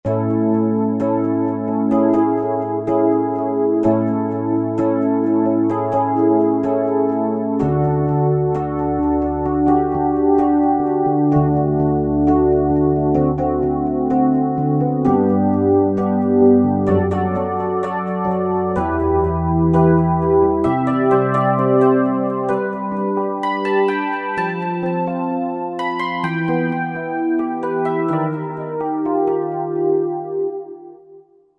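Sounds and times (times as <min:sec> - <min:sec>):
D-50 synthesizer Rhodes electric piano sound: 0:00.0 - 0:31.3.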